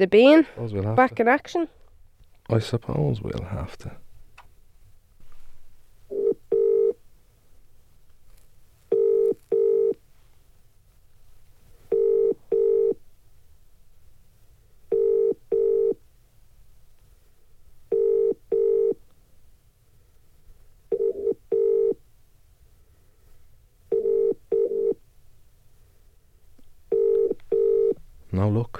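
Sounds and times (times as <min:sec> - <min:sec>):
speech: 0:00.0 - 0:01.8, 0:02.5 - 0:04.0
faint low hum: 0:00.0 - 0:28.7
telephone ringback tone: 0:06.1 - 0:07.0, 0:08.9 - 0:10.0, 0:11.9 - 0:13.0, 0:14.9 - 0:16.0, 0:17.9 - 0:19.0, 0:20.9 - 0:22.0, 0:23.9 - 0:25.0, 0:26.9 - 0:28.0.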